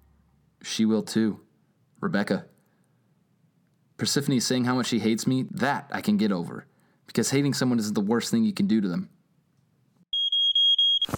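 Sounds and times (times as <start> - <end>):
speech: 0.6 - 1.4, 2.0 - 2.5, 4.0 - 9.2
piercing smoke alarm beeping: 10.1 - 11.1.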